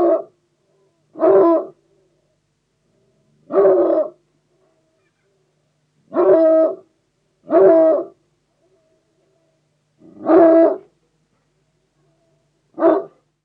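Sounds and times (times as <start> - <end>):
bloodhound giving deep barks: 0.0 - 0.3, 1.2 - 1.8, 3.4 - 4.2, 6.1 - 6.8, 7.5 - 8.2, 10.0 - 10.9, 12.7 - 13.2.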